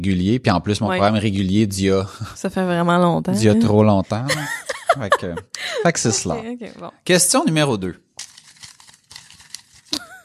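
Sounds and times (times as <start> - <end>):
speech: 0.0 - 8.0
laughter: 3.4 - 6.4
many paper slips stirred in a bowl: 8.2 - 10.1.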